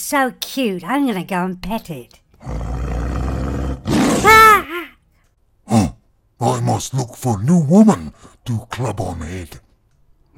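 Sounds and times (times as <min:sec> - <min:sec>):
speech: 0:00.1 - 0:02.6, 0:06.4 - 0:09.6
saber-tooth tiger roaring and snarling: 0:02.4 - 0:04.6.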